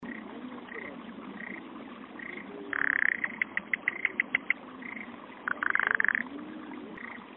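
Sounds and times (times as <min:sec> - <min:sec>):
soft brief frog croaks: 0:00.0 - 0:01.6, 0:02.2 - 0:07.2
spaced frog clicks: 0:02.2 - 0:06.2.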